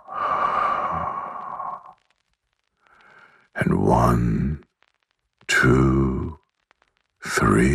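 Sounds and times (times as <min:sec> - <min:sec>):
slow exhaling breath during a guided bedtime breathing exercise: 0:00.0 - 0:02.0, 0:02.8 - 0:03.5
speech: 0:03.6 - 0:04.4, 0:05.6 - 0:06.0.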